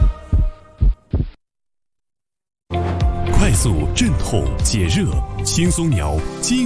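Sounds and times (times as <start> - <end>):
pounding heartbeat sound effect: 0.0 - 1.4
speech: 3.6 - 6.6.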